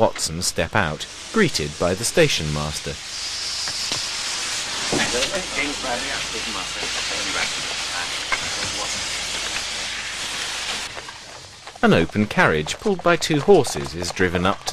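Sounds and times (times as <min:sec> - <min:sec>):
indistinct voices: 0:00.0 - 0:03.0, 0:04.8 - 0:09.7, 0:11.8 - 0:14.7
speech: 0:00.0 - 0:03.8, 0:05.1 - 0:09.0, 0:11.8 - 0:14.7
steam hissing from a train at a station: 0:00.0 - 0:14.7.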